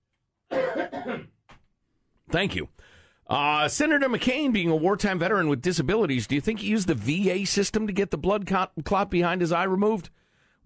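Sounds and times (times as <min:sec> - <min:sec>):
person coughing harshly: 0:00.5 - 0:01.4
speech: 0:02.3 - 0:10.6.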